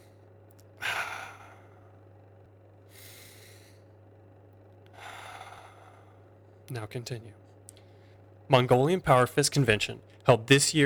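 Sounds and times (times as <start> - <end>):
steady low hum: 0.0 - 10.8
deep breathing: 0.8 - 4.0, 4.8 - 6.6
speech: 6.7 - 7.5, 8.5 - 10.8.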